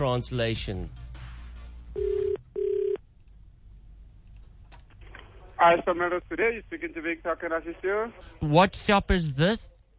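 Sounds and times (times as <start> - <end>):
speech: 0.0 - 1.0, 5.6 - 9.7
buzzing telephone ringback tone through the earpiece: 2.0 - 3.0.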